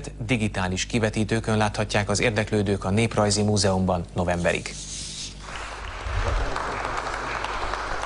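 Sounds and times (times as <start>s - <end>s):
speech: 0.0s - 5.0s
audience applause for an award winner: 5.4s - 8.0s.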